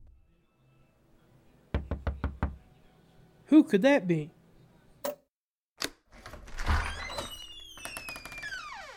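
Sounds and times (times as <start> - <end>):
firm knocking on a door: 1.8 - 2.6
speech: 3.5 - 4.4.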